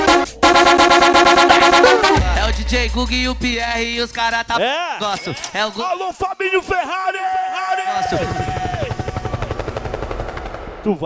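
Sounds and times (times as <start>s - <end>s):
pounding funk beat: 0.0s - 4.6s, 8.0s - 10.8s
speech: 2.8s - 8.8s, 10.8s - 11.0s
helicopter rotor chopping effect in a funk mix: 8.0s - 11.0s.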